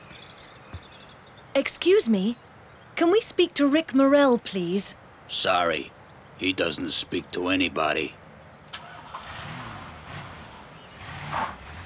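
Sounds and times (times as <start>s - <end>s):
speech: 1.6s - 2.4s, 3.0s - 8.2s
car engine running as the car drives away from a home in Los Angeles: 6.4s - 11.8s.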